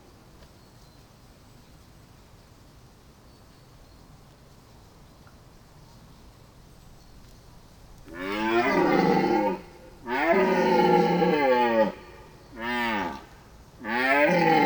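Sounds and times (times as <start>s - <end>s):
red deer roaring in a forest during the mating season: 8.1s - 14.6s.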